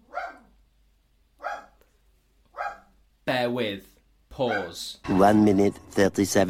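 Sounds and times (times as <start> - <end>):
dog barking: 0.0 - 0.6, 1.4 - 1.8, 2.5 - 3.0, 4.4 - 4.8
speech: 3.4 - 6.4.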